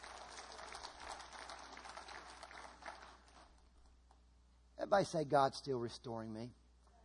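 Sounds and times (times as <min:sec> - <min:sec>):
crowd clapping: 0:00.0 - 0:03.7
speech: 0:04.9 - 0:06.6.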